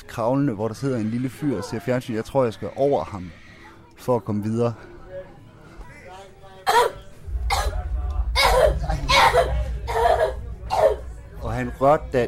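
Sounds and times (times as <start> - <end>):
speech: 0.2 - 3.4, 4.0 - 4.9, 11.6 - 12.2
murmur of voice: 2.8 - 12.2
man coughing: 6.7 - 7.8, 8.4 - 11.0
low rumble: 7.1 - 12.2.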